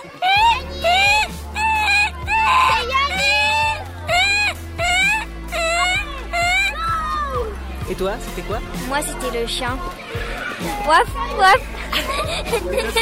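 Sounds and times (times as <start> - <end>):
laughter: 0.0 - 7.7, 9.8 - 13.0
human voice imitating a koala's call: 0.2 - 6.8
speech: 8.0 - 13.0.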